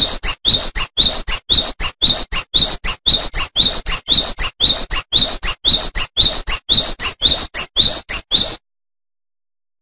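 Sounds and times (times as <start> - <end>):
bird giving high chirps: 0.0 - 8.6.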